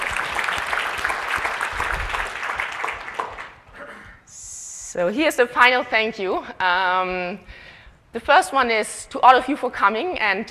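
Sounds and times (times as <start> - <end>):
conference audience applause: 0.0 - 3.7
speech: 4.9 - 10.4.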